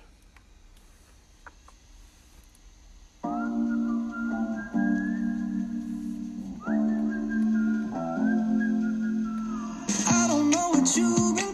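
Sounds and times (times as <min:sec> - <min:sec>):
whistled pop melody: 0:03.2 - 0:11.5
pop song music: 0:06.8 - 0:11.5.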